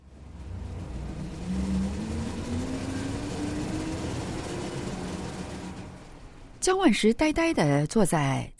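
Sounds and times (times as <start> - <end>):
bus engine droning with a rising whine while gathering speed: 0.0 - 6.6
speech: 6.6 - 8.5.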